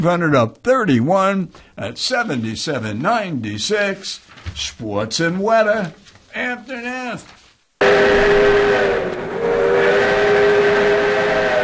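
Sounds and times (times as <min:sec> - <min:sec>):
speech: 0:00.0 - 0:09.2
steam train whistle in Willits: 0:07.8 - 0:11.6.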